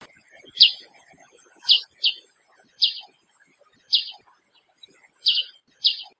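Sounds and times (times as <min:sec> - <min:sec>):
black-headed bulbul calls: 0:00.5 - 0:00.9, 0:01.6 - 0:02.2, 0:02.8 - 0:03.1, 0:03.9 - 0:04.2, 0:05.2 - 0:06.1.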